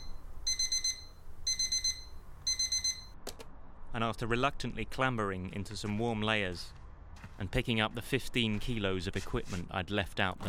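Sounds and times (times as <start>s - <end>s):
digital alarm clock beeping: 0.0s - 3.2s
speech: 3.9s - 6.8s, 7.4s - 10.4s.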